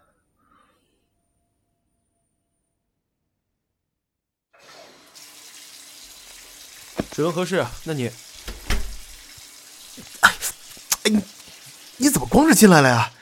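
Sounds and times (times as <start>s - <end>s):
hotel bathroom tap running water to fill a bath: 4.6s - 13.2s
speech: 7.2s - 8.3s, 11.1s - 11.3s, 12.4s - 13.2s.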